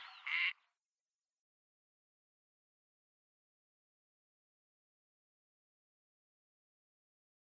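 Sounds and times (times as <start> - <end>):
female gadwall nasal quack flight call: 0.0 - 0.6.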